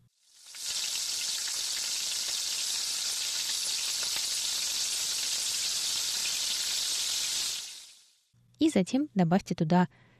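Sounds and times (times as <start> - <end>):
tomatoes and green onion sizzling in hot vegetable oil in a wok: 0.1 - 8.2
speech: 8.6 - 10.1.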